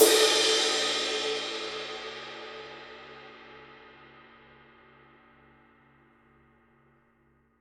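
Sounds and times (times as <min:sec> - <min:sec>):
ride cymbal edge: 0:00.0 - 0:03.6.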